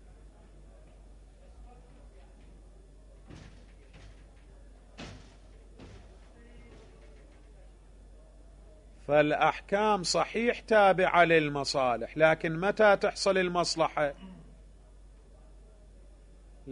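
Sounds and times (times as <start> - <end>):
people talking faintly in a room: 0.0 - 9.1, 14.2 - 16.7
door pushed shut with solid knocks and thuds: 3.2 - 7.6
speech: 9.1 - 14.3.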